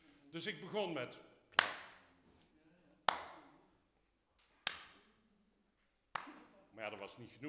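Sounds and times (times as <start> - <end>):
speech: 0.4 - 1.3, 6.8 - 7.4
sharp hand claps in a reverberant room: 1.5 - 2.1, 3.1 - 3.6, 4.6 - 5.1, 6.1 - 6.6.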